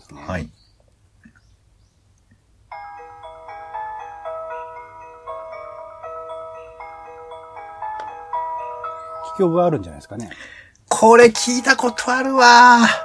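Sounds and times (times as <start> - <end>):
speech: 0.1 - 0.6, 9.4 - 13.0
train station departure melody of bell-like electronic chime notes: 2.8 - 10.0, 11.0 - 13.0.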